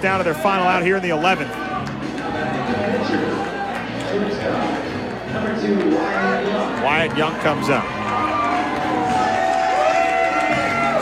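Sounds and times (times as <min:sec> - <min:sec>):
speech: 0:00.0 - 0:01.8, 0:04.1 - 0:08.2
large crowd cheering: 0:01.2 - 0:11.0
scattered shouts from crowd: 0:07.3 - 0:11.0.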